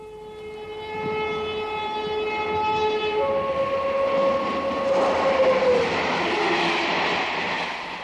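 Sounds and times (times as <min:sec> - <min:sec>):
passing train horn of several stacked tones: 0:00.0 - 0:07.2
passing train rushing rumble: 0:01.6 - 0:08.0.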